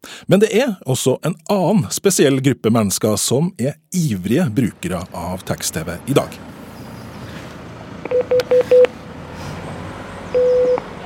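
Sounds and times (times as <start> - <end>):
speech: 0.3 - 6.6
telephone touch-tone dialing beeps: 8.1 - 8.9, 10.4 - 10.9
longer steady telephone tone: 10.3 - 11.0.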